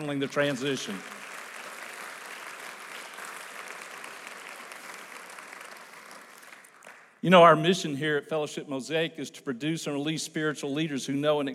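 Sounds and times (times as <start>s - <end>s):
speech: 0.0s - 1.2s, 7.2s - 11.5s
room full of people applauding: 0.0s - 7.1s.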